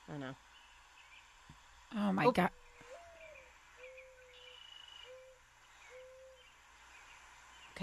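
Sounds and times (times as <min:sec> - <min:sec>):
steady hiss: 0:00.0 - 0:07.8
speech: 0:00.1 - 0:00.6, 0:01.9 - 0:02.6
bird hooting: 0:02.4 - 0:07.6.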